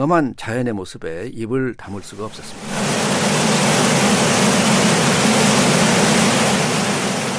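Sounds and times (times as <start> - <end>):
speech: 0.0 - 2.9
roaring waterfall: 2.2 - 7.3.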